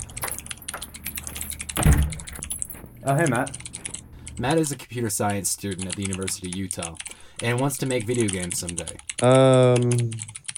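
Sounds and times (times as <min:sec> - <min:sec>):
computer keyboard typing by a student programming: 0:00.0 - 0:10.5
thump: 0:01.8 - 0:02.3
speech: 0:03.0 - 0:03.6, 0:04.4 - 0:10.3.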